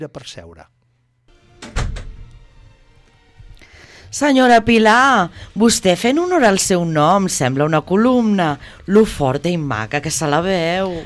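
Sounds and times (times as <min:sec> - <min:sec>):
speech: 0:00.0 - 0:00.8, 0:04.1 - 0:11.0
door opening in an office: 0:01.4 - 0:02.7.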